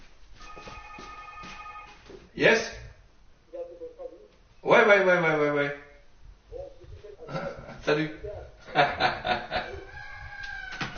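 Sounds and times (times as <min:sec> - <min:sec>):
telephone ringing with steady electronic tone: 0:00.4 - 0:02.1
speech: 0:02.4 - 0:02.8, 0:04.9 - 0:05.5
laughter: 0:08.6 - 0:10.0.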